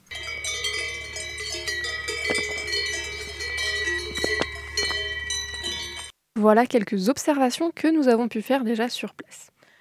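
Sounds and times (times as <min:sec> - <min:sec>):
cow bells on grazing cows clanging in an alpine pasture: 0:00.0 - 0:06.1
low outdoor hum: 0:00.0 - 0:06.1
speech: 0:06.4 - 0:09.5.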